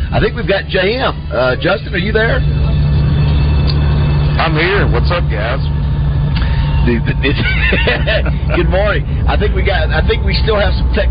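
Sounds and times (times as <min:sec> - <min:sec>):
bus engine rumble through a muffled phone line: 0:00.0 - 0:11.0
speech: 0:00.1 - 0:02.6, 0:04.4 - 0:05.8, 0:06.8 - 0:11.0
laughter: 0:07.0 - 0:09.0.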